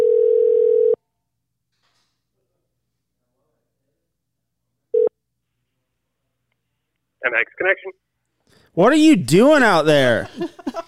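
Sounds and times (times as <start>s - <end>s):
telephone ringback tone over the line: 0.0s - 1.0s
speech: 7.2s - 8.1s, 8.7s - 10.8s
laughter: 9.8s - 10.8s.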